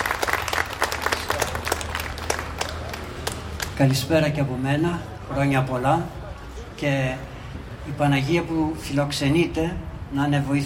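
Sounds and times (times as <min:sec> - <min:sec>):
crowd of people applauding: 0:00.0 - 0:03.9
speech: 0:03.8 - 0:06.2, 0:06.8 - 0:07.3, 0:07.9 - 0:10.6.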